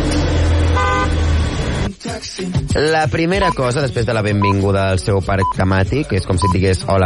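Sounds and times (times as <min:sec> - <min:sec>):
car engine rumble: 0:00.0 - 0:01.9
street traffic: 0:00.0 - 0:01.9
car horns tooting: 0:00.6 - 0:01.3
speech: 0:02.2 - 0:07.0.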